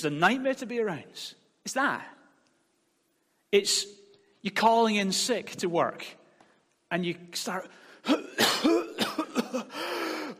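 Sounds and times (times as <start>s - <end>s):
speech: 0.0s - 2.2s, 3.5s - 6.2s, 6.9s - 8.9s
person fake coughing: 8.0s - 10.3s.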